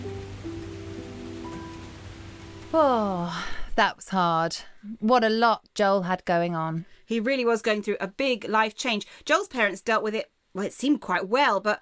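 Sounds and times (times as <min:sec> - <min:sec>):
pouring rain: 0:00.0 - 0:03.9
speech: 0:02.7 - 0:11.8.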